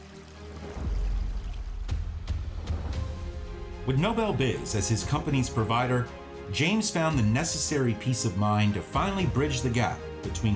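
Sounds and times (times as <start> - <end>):
mountain stream rushing: 0.0 - 2.0
splashy surges of a mountain stream: 0.0 - 2.6
speech: 3.9 - 10.5.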